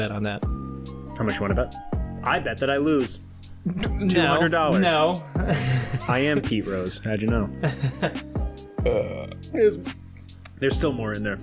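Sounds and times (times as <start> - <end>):
speech: 0.0 - 0.5, 1.2 - 10.0, 10.6 - 11.4
laughter: 3.7 - 8.2
loud deep croaky burp: 8.8 - 9.4.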